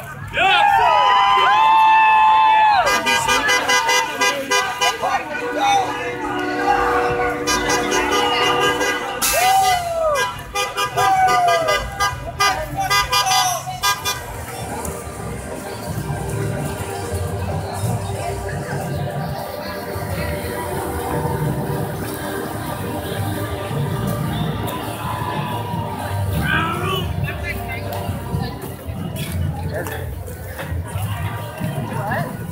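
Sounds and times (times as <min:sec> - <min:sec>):
protesters' voices and crowd noise: 0:00.0 - 0:32.5
rumble of truck engines and downtown traffic: 0:00.0 - 0:32.5
truck horns blaring at a street protest: 0:02.8 - 0:14.8, 0:19.8 - 0:28.4.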